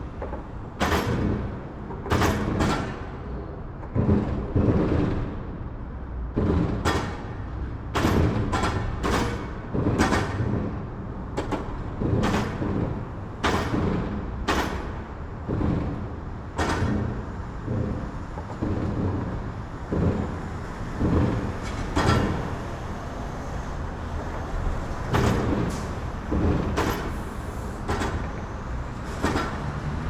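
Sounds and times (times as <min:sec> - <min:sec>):
moderate urban traffic over an elevated metal plate: 0:00.0 - 0:30.0.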